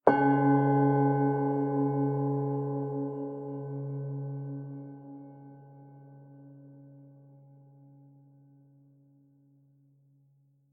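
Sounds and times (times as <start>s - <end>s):
meditation bell ringing: 0.1s - 7.7s.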